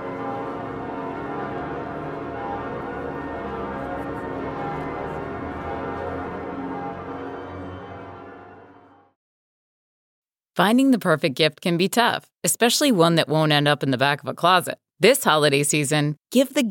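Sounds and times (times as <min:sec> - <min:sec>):
large cathedral bells pealing: 0:00.0 - 0:09.1
speech: 0:10.6 - 0:16.7.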